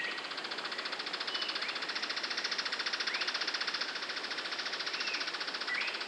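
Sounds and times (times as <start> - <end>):
Philydor novaesi rattle call: 0.0 - 6.0.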